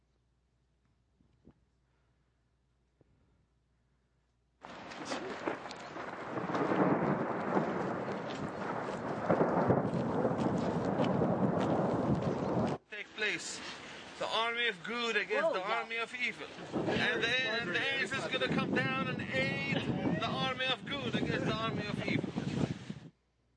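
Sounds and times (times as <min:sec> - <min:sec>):
dime-sized hail pelting down during a thunderstorm: 0:04.6 - 0:14.3, 0:16.2 - 0:22.1
speech: 0:14.4 - 0:19.8.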